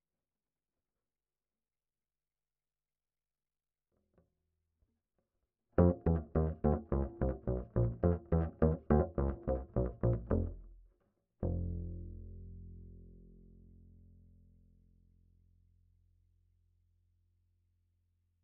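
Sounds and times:
bass line: 5.8s - 10.8s, 11.4s - 13.3s.

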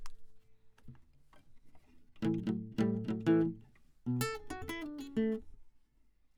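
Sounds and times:
classical guitar: 0.9s - 5.7s.

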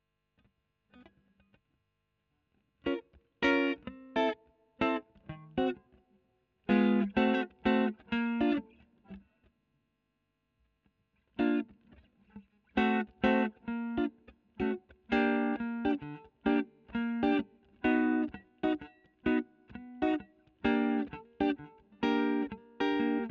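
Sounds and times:
electric guitar: 2.8s - 9.3s, 11.2s - 23.2s.

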